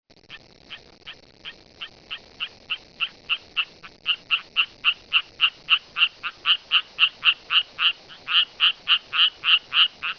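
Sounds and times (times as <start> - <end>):
rocket frog calling: 0.3 - 10.1.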